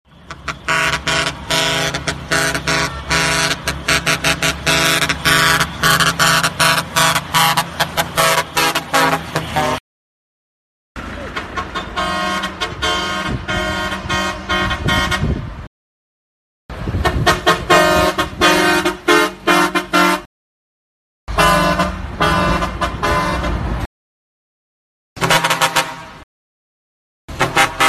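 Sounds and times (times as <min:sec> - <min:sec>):
truck air horn: 0:00.1 - 0:09.8, 0:11.3 - 0:15.6, 0:16.9 - 0:20.3, 0:21.3 - 0:23.9, 0:25.2 - 0:26.2, 0:27.3 - 0:27.8.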